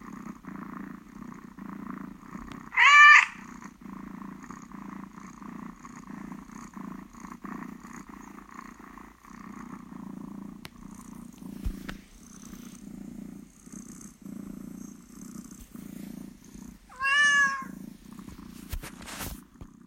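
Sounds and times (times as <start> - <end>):
cat purring: 0.0 - 19.8
cat meowing: 2.7 - 3.4, 16.9 - 17.7.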